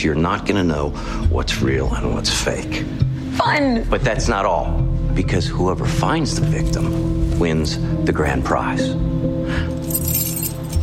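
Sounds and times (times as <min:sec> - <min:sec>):
speech: 0:00.0 - 0:10.0
Stingray car keys jingling: 0:09.8 - 0:10.8.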